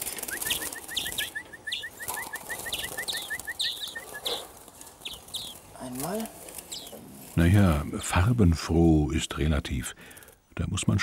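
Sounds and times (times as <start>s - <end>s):
three greenfinches chirping: 0.0s - 7.0s
faint rustle: 0.0s - 8.6s
speech: 5.9s - 6.4s, 7.4s - 11.0s.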